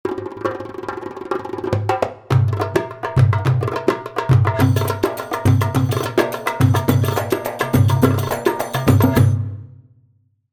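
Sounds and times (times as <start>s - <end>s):
darbuka playing a Rhumba Masri rhythm at 105: 0.1s - 9.9s.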